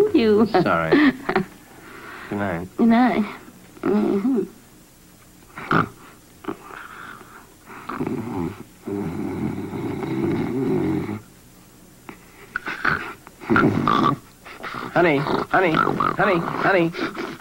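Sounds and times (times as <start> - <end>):
speech: 0.2 - 1.5, 2.3 - 4.6, 5.6 - 5.9, 15.0 - 17.3
loud rough rattling snore: 5.6 - 6.7, 7.8 - 11.3, 12.8 - 17.3.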